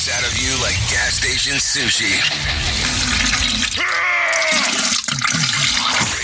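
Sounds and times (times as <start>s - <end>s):
speech: 0.1s - 3.3s
toilet flushing as the bowl drains and refills: 2.0s - 6.1s.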